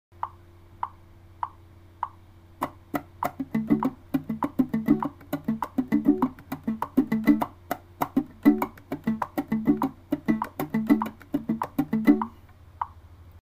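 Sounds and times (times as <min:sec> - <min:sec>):
salsa rhythm: 0:02.6 - 0:12.4.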